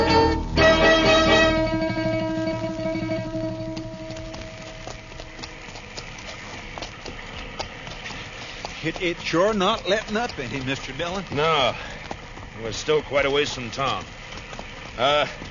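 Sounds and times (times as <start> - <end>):
sustained tonal drone: 0.0 - 5.4
horse hooves clip-clopping at a walk: 0.0 - 15.5
low rumbling background: 0.0 - 15.5
speech: 9.0 - 12.0, 12.6 - 14.2, 15.0 - 15.5.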